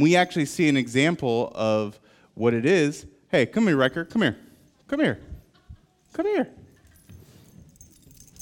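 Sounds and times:
speech: 0.0s - 5.3s, 6.2s - 6.6s
keys being shaken and jangling: 6.7s - 8.4s.

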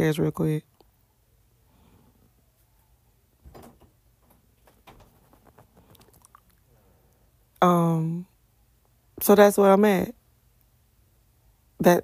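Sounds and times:
speech: 0.0s - 0.7s, 7.6s - 8.3s, 9.2s - 10.2s, 11.8s - 12.0s
door creaking as it is pushed partly closed: 3.4s - 6.4s
soft scattered taps and shuffling: 3.4s - 6.6s.

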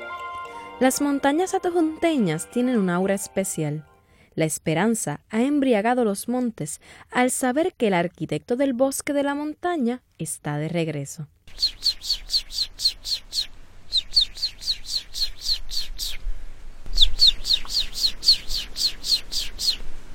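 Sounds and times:
speech: 0.8s - 12.2s
sierra hawk calling in sharp high-pitched notes: 11.5s - 16.2s, 16.9s - 19.9s.

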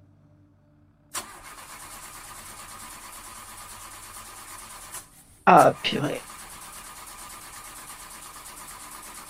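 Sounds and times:
car engine cranking without catching: 1.2s - 4.6s
speech: 5.5s - 6.3s.

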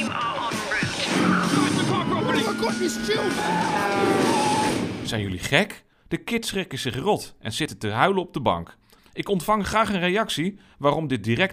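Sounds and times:
tyres screeching: 0.9s - 4.9s
speech: 2.7s - 4.3s, 5.1s - 11.5s
person crying out in alarm: 3.0s - 4.9s.

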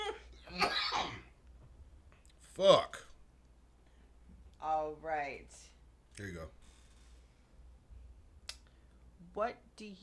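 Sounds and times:
person coughing close to the microphone: 0.5s - 1.3s
speech: 2.6s - 3.0s, 5.0s - 6.6s, 9.3s - 10.0s.

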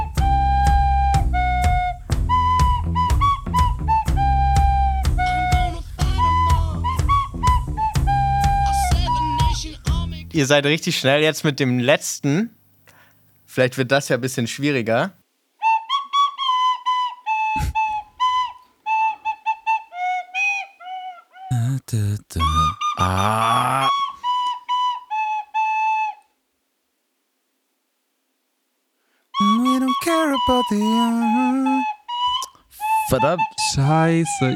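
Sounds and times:
person whistling a song melody from a football video game soundtrack: 0.0s - 10.0s, 15.6s - 20.5s, 22.4s - 26.1s, 29.4s - 34.5s
speech: 10.4s - 12.6s, 13.6s - 15.2s, 21.9s - 24.0s, 30.2s - 31.9s, 33.1s - 34.5s.

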